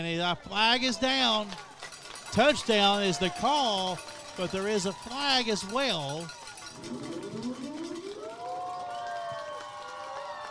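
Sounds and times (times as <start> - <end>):
speech: 0.0 - 1.7, 2.3 - 7.3
air raid siren: 6.7 - 9.5.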